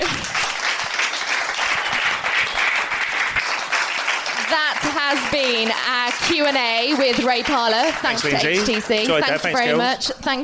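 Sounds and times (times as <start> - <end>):
large audience applauding: 0.0 - 9.8
speech: 4.5 - 10.4.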